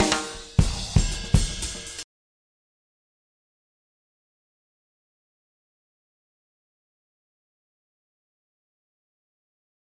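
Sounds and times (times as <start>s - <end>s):
120 break drum loops: 0.0s - 2.0s.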